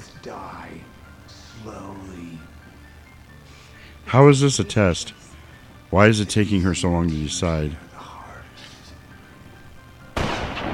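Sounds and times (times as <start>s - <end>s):
speech: 0.2s - 2.5s, 4.0s - 5.2s, 5.9s - 7.9s
gunshot blast in a video game: 10.2s - 10.7s.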